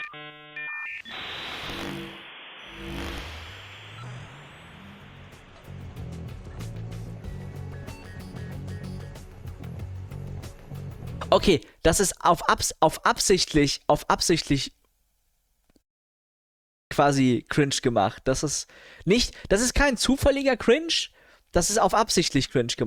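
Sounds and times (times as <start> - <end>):
dial-up modem connection sound: 0.0 - 2.1
speech: 11.3 - 14.8, 17.0 - 22.8.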